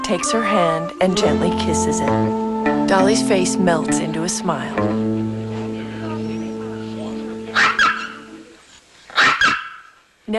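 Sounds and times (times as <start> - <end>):
steady tonal hum: 0.0 - 8.7
speech: 0.1 - 5.4
toy poodle barking in an apartment: 7.5 - 8.3, 9.1 - 10.0.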